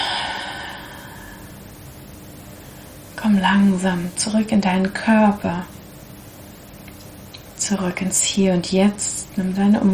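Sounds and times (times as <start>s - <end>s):
deep breath in through nose and out through mouth during guided relaxation: 0.0s - 1.6s
speech: 3.2s - 5.8s, 7.7s - 9.9s.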